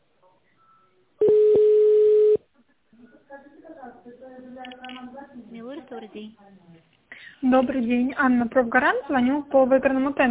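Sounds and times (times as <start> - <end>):
telephone keypad tone while dialing an extension: 0.6 - 2.4
speech: 4.1 - 10.3.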